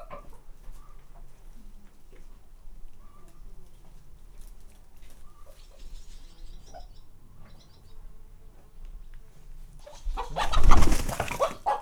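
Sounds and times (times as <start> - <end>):
Hungarian hen flapping wings in farmyard: 9.9 - 11.7.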